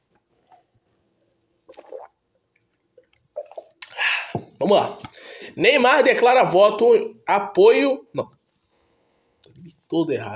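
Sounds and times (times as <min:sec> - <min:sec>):
person drinking a glass of water, gulping and swallowing: 0:01.6 - 0:04.6
speech: 0:04.6 - 0:08.4, 0:09.6 - 0:10.3.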